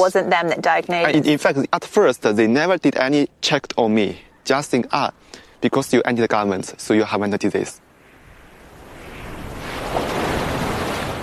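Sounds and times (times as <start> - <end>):
speech: 0.0 - 7.8
faint wind: 0.0 - 11.2
ocean surf on a white sandy beach: 8.0 - 11.2.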